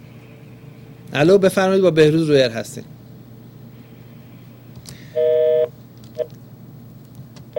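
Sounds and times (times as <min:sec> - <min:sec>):
speech: 0:01.1 - 0:03.0
electronic telephone tone on a failed call: 0:05.2 - 0:06.3.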